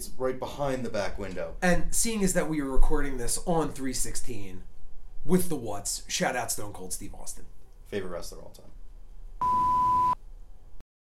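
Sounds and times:
speech: 0:00.2 - 0:08.8
phone beep: 0:09.4 - 0:10.2.

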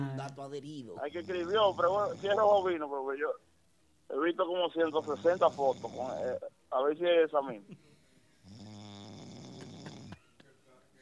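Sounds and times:
speech: 0:00.3 - 0:03.5, 0:04.1 - 0:07.9
person snoring: 0:05.0 - 0:06.4, 0:08.4 - 0:10.2.

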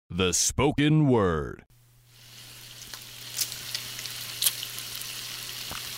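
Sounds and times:
speech: 0:00.1 - 0:01.7
bacon sizzling in a pan: 0:02.0 - 0:05.9.

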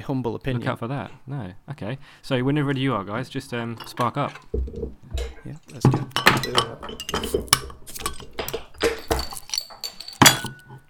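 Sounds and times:
speech: 0:00.0 - 0:07.8
glass beer bottles clinking and knocking together: 0:03.6 - 0:10.8
beer bottle being opened: 0:07.0 - 0:10.6.

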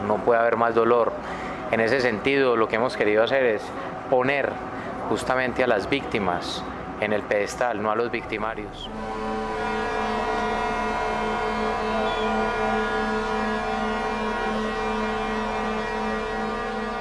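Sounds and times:
speech: 0:00.1 - 0:09.8
warning siren wailing: 0:08.6 - 0:16.9.

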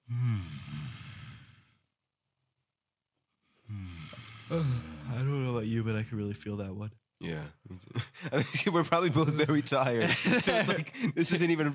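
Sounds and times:
stifled yawn with closed mouth: 0:00.0 - 0:01.7, 0:03.6 - 0:05.5
speech: 0:04.5 - 0:11.7
laughter: 0:07.8 - 0:11.7.

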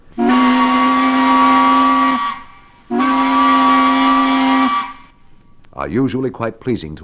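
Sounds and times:
tugboat whistle blasts: 0:00.0 - 0:05.2
speech: 0:05.8 - 0:07.0.

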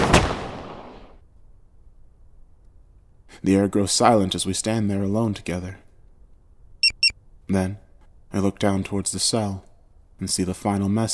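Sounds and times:
gunshot: 0:00.0 - 0:01.1
speech: 0:03.4 - 0:05.8, 0:07.5 - 0:11.1.

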